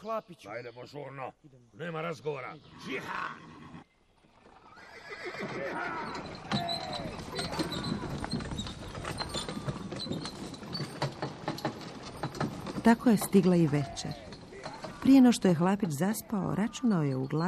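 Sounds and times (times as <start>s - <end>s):
speech: 0.0s - 3.7s, 5.1s - 9.2s, 12.8s - 14.2s, 15.0s - 17.4s
horse whinnying: 2.7s - 15.2s
horse-drawn cart wheels creaking and rattling: 4.0s - 17.4s
horse hooves clip-clopping pulling a cart: 4.2s - 17.4s.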